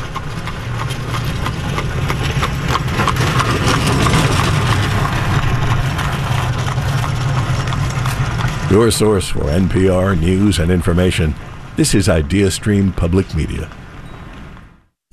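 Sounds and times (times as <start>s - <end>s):
clip-clopping hoofbeats on a road in Holmes County: 0.0s - 9.2s
rattling wheels on a road in Holmes County: 0.0s - 10.0s
constant low engine rumble of passing traffic: 0.0s - 15.1s
speech: 8.7s - 13.8s.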